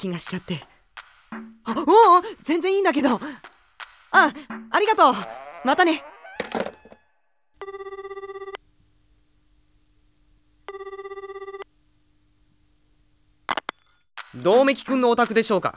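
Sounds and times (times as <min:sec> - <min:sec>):
speech: 0:00.0 - 0:00.8, 0:01.7 - 0:03.5, 0:04.1 - 0:06.1, 0:14.4 - 0:15.7
telephone ringing with a buzzing electronic trill: 0:07.6 - 0:08.6, 0:10.7 - 0:11.6.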